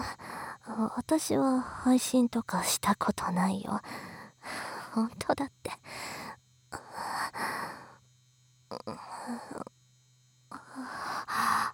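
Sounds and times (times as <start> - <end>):
steady low electrical hum: 0.0 - 11.7
speech: 0.8 - 4.1, 5.0 - 6.8
drawn-out breathy yawn: 8.7 - 9.7, 10.5 - 11.7.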